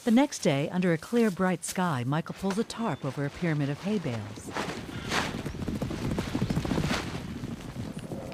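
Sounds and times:
speech: 0:00.0 - 0:04.8
herd of wild horses galloping past: 0:02.2 - 0:08.3.

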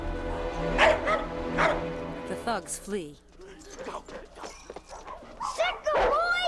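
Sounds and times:
dogs barking, a Jack Russell terrier among them, freed from cages: 0:00.2 - 0:02.1, 0:03.9 - 0:06.4
speech: 0:02.6 - 0:03.3.

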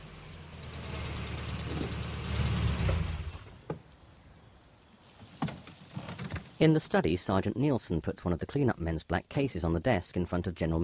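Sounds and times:
car engine and road rumble as a car pulls up and parks: 0:00.0 - 0:06.7
speech: 0:06.6 - 0:10.8.

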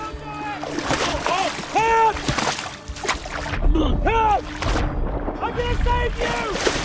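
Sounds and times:
man running from a beach into cold water splashing: 0:00.6 - 0:03.7, 0:06.1 - 0:06.8
speech: 0:03.8 - 0:06.8.

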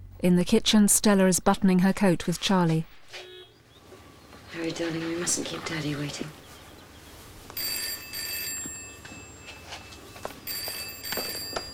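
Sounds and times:
low noise: 0:00.0 - 0:11.7
speech: 0:00.2 - 0:03.3, 0:04.5 - 0:06.4
telephone bell ringing: 0:07.6 - 0:11.7.

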